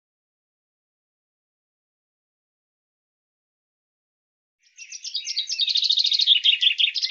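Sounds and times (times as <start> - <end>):
common chaffinch song: 4.6 - 7.0.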